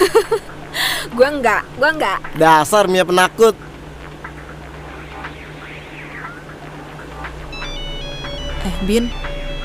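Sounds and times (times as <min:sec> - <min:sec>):
laughter: 0:00.0 - 0:00.5
steady hum and hiss: 0:00.0 - 0:09.6
speech: 0:01.2 - 0:03.7, 0:08.6 - 0:09.3
mobile phone ringtone ringing in a bag: 0:07.5 - 0:09.6.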